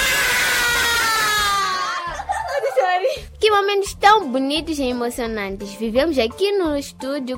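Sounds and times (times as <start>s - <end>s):
group of children shouting a cheer in a studio: 0.0s - 2.4s
laughter: 1.6s - 3.2s
speech: 3.5s - 7.3s.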